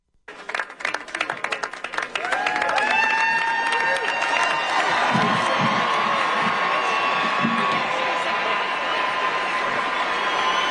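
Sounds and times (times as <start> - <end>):
large crowd cheering and whooping: 0.3 - 10.6
scattered claps: 0.3 - 10.6
people shouting: 2.2 - 10.6.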